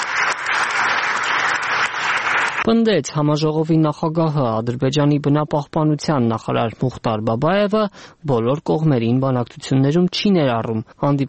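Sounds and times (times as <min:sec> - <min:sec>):
audience applause after a speech at an international conference: 0:00.0 - 0:02.6
speech: 0:02.7 - 0:11.2.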